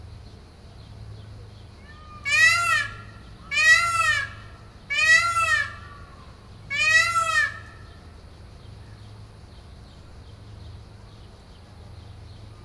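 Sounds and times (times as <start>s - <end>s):
peacock calling at Makryammos beach on Thassos: 1.8s - 7.9s.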